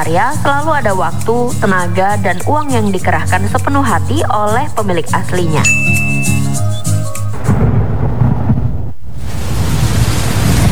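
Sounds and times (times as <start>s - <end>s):
speech: 0.0s - 6.0s
brief musical tone: 5.5s - 7.4s
deep rolling thunder: 7.3s - 10.7s
heavy rain in the rainy season: 7.3s - 10.7s.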